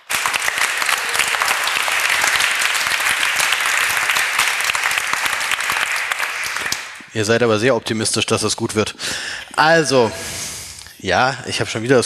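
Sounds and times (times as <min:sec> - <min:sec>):
audience applause: 0:00.0 - 0:07.1
speech: 0:07.2 - 0:10.3, 0:11.0 - 0:12.0.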